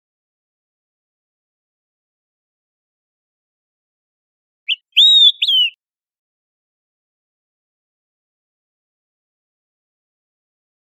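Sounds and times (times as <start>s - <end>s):
Olive-sided flycatcher giving its three-part whistle in Costa Rica: 4.7s - 5.8s.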